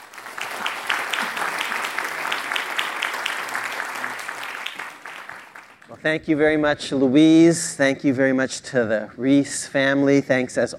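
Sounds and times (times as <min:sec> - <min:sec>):
large audience applauding a speaker coming to the stage: 0:00.0 - 0:06.0
speech: 0:06.0 - 0:10.7.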